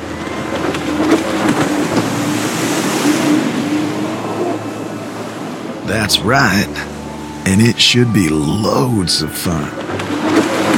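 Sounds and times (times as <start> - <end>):
jet ski engine droning: 0.0 - 10.7
rushing water: 0.0 - 10.7
speech: 6.0 - 6.9, 7.5 - 10.5.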